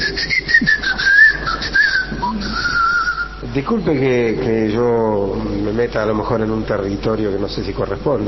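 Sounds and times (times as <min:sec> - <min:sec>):
person whistling a short wavering tune as a signal: 0:00.0 - 0:03.4
speech: 0:03.6 - 0:08.2.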